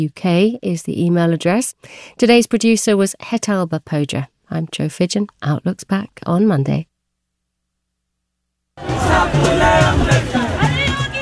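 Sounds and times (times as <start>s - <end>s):
speech: 0.0s - 6.9s, 8.8s - 10.6s
large protest crowd shouting and babbling in a street in India: 8.8s - 11.2s.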